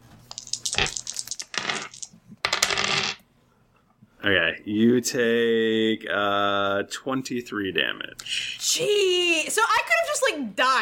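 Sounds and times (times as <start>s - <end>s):
many dice clattering and rolling across a hard table: 0.3s - 3.2s
speech: 4.2s - 10.7s.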